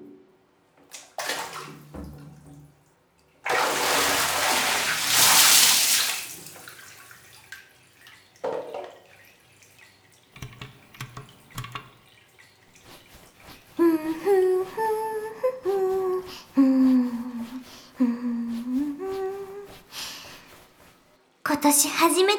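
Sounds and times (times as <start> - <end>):
bath water gushing as a bath is run: 0.9 - 15.4
person humming a soft melody: 13.8 - 19.8
speech: 21.6 - 22.3.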